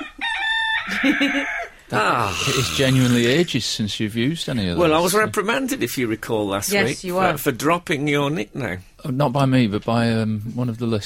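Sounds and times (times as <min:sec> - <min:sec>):
rooster crowing: 0:00.0 - 0:01.8
speech: 0:00.9 - 0:11.0.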